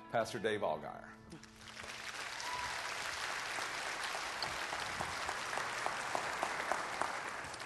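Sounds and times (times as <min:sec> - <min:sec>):
speech: 0:00.1 - 0:01.5
large church audience clapping to welcome a guest pastor: 0:01.5 - 0:07.6.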